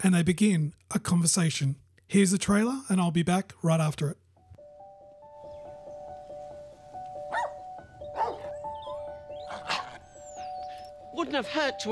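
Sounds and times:
speech: 0:00.0 - 0:04.2, 0:11.2 - 0:11.9
dog barking: 0:07.3 - 0:10.0.

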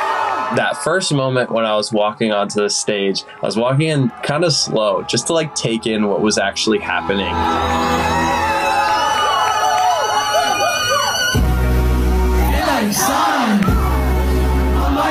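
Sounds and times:
huge concert crowd screaming song lyrics back at a singer: 0:00.0 - 0:01.0, 0:06.7 - 0:15.0
speech: 0:00.5 - 0:08.4.

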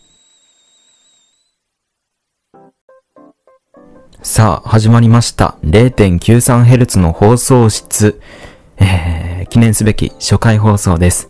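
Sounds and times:
kettle steam whistle: 0:00.0 - 0:01.7
speech: 0:04.2 - 0:11.2.

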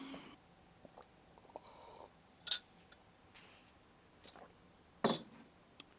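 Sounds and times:
person gulping tea: 0:00.8 - 0:02.1
faint handling sounds: 0:02.7 - 0:03.8
cup clinking: 0:04.3 - 0:05.3.

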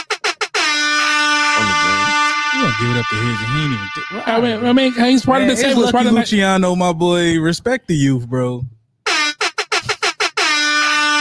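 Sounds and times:
air horn sound effect blasts: 0:00.0 - 0:06.0, 0:09.1 - 0:11.2
speech: 0:02.8 - 0:08.8.

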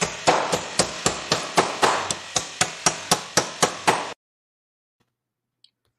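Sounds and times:
bricklayer hammering: 0:00.0 - 0:04.2.

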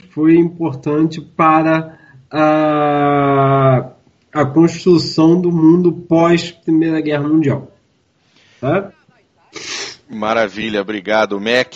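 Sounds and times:
speech: 0:00.2 - 0:07.7, 0:08.6 - 0:11.7
person sneezing: 0:09.4 - 0:10.1.

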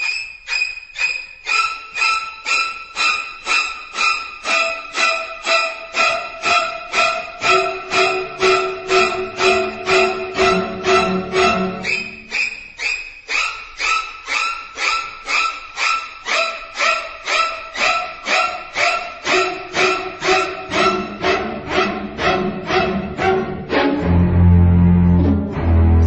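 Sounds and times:
shrieking high staccato violin strokes in a string soundtrack: 0:00.0 - 0:26.0
deep low cello note: 0:06.0 - 0:12.1, 0:19.3 - 0:26.0.

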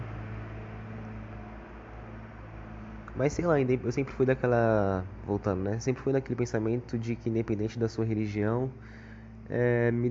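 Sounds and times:
heavy truck engine rumbling while passing by: 0:00.0 - 0:05.8
speech: 0:03.2 - 0:10.0.

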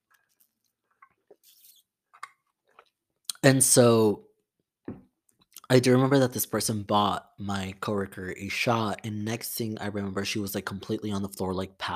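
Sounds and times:
person sipping a drink: 0:00.0 - 0:03.4
speech: 0:03.4 - 0:04.3, 0:05.7 - 0:11.9.

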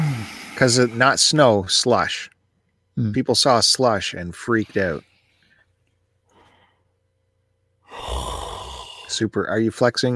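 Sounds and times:
speech: 0:00.6 - 0:02.3, 0:03.0 - 0:05.1, 0:09.1 - 0:10.1
person yawning: 0:07.9 - 0:09.1.

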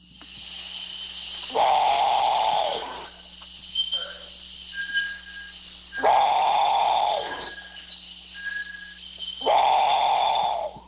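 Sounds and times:
continuous high insect hum: 0:00.0 - 0:10.8
great potoo giving loud hoarse growling roars: 0:01.5 - 0:03.1, 0:06.0 - 0:07.7, 0:09.4 - 0:10.8.

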